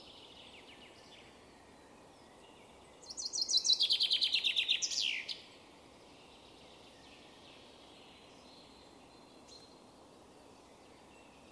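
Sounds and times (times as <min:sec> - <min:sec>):
common chaffinch song phrase: 0:00.0 - 0:11.5
faint hiss: 0:00.0 - 0:11.5.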